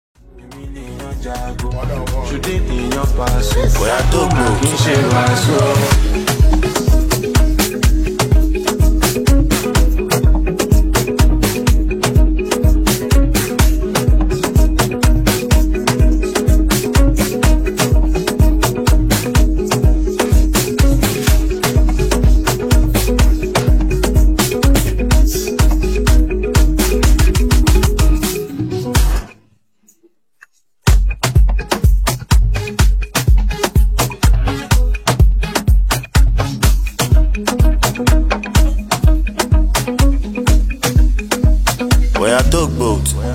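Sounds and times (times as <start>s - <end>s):
open verse instrumental beat with hook: 0.6s - 29.2s, 29.8s - 43.2s.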